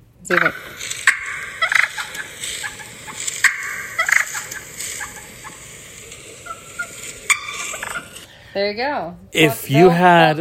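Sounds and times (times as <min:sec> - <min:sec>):
speech: 0:00.3 - 0:00.8, 0:08.6 - 0:10.3
wild turkeys clucking and purring: 0:00.3 - 0:08.4.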